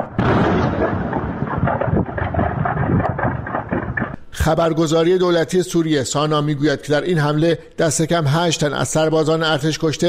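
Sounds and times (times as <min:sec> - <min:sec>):
successive ammunition depot explosions: 0:00.0 - 0:04.2
wind noise on the microphone: 0:00.0 - 0:04.2
speech: 0:04.4 - 0:10.0.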